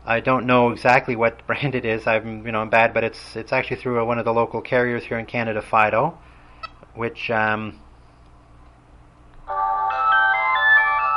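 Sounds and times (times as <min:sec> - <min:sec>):
speech: 0:00.1 - 0:06.3, 0:07.0 - 0:07.8
cell phone ringtone with a bright electronic melody: 0:09.5 - 0:11.1.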